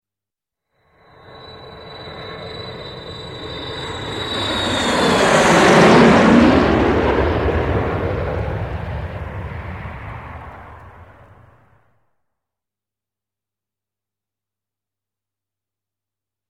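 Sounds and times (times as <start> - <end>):
airplane: 0.7 - 11.9.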